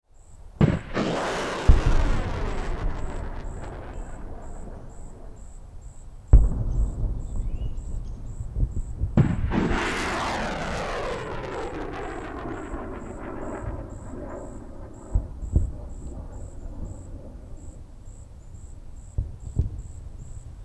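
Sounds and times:
rocket explosion: 0.6 - 17.1
nighttime rocket launch: 0.6 - 17.9.

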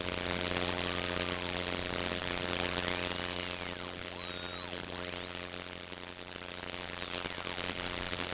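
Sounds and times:
radio static: 0.6 - 8.3.

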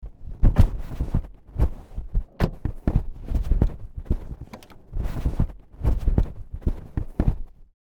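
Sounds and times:
searching in car interior compartments: 0.1 - 7.1.

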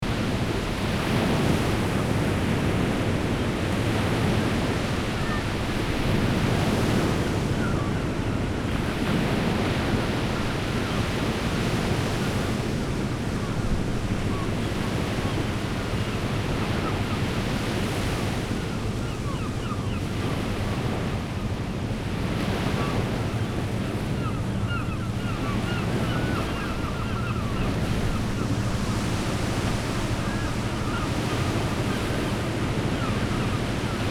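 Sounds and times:
sea ambience: 0.0 - 34.0.

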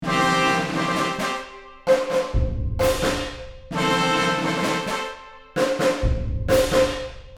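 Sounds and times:
marching field drum: 0.0 - 7.3.

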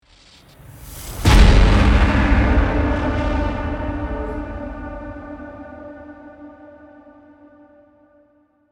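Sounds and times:
dramatic scare impact suspense hit: 0.7 - 7.3.

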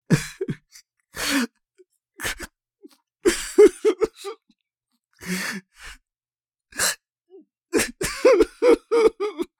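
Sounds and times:
man sniffling and crying: 0.1 - 1.5, 3.3 - 4.4, 5.2 - 6.0, 6.8 - 7.0, 7.8 - 9.5.

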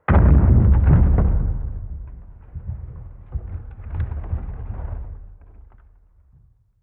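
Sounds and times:
low explosion sweetener: 0.0 - 5.4
wood impact: 0.0 - 6.6.

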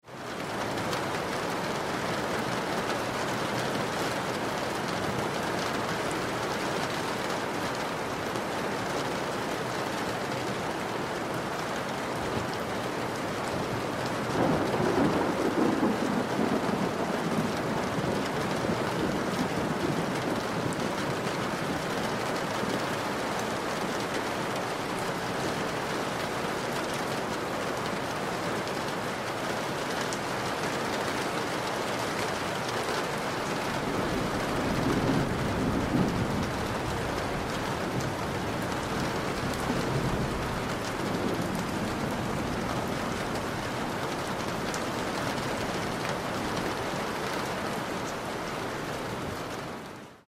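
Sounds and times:
rain on window sill: 0.0 - 50.2
distant thunder: 13.9 - 22.0, 33.5 - 47.3.

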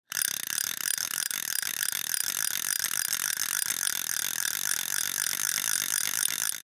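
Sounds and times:
fishing rod reel spinning fast: 0.0 - 6.6.

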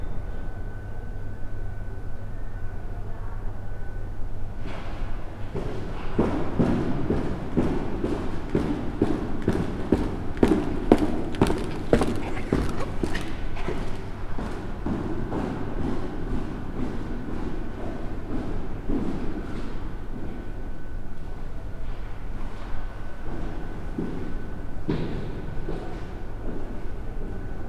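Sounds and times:
constant humming in a large hallway: 0.1 - 27.6
ventilation noise in a large hallway: 1.1 - 27.6.

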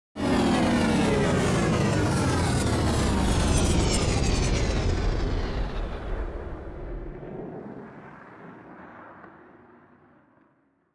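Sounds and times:
cargo spaceship landing: 0.2 - 7.6.

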